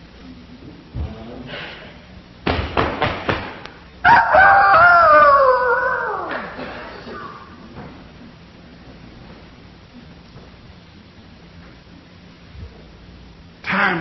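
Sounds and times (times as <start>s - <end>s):
rooster crowing: 4.0s - 6.6s.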